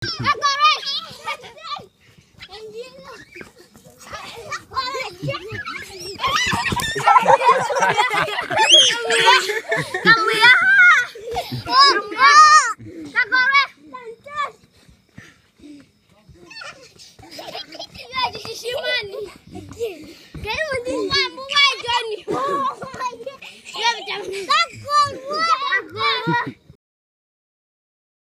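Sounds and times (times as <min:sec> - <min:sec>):
kids playing in Zambia: 0:00.0 - 0:26.8
laughter: 0:04.3 - 0:13.1, 0:17.2 - 0:20.2, 0:20.8 - 0:26.6.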